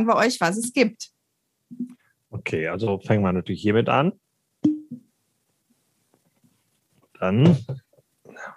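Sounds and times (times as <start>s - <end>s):
speech: 0.0s - 1.1s, 1.7s - 4.8s, 7.2s - 7.8s
bottle opening with a pop: 4.6s - 5.1s.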